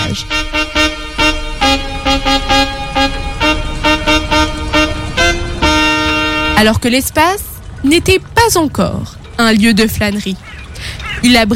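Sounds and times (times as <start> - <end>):
car horns honking in busy road traffic: 0.0 - 7.4
low rumble of traffic engines: 0.0 - 11.5
speech: 0.2 - 0.4, 6.6 - 10.5, 11.2 - 11.5.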